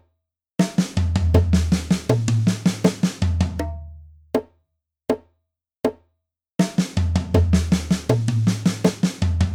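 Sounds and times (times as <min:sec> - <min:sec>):
drum fills at 80 bpm: 0:00.6 - 0:03.8, 0:06.6 - 0:09.5.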